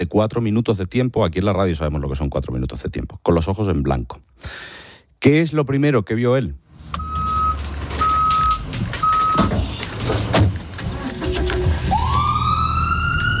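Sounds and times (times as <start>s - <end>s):
speech: 0.0s - 7.0s
busy traffic noise: 6.7s - 13.3s
ambulance siren beeping and wailing: 11.4s - 13.3s.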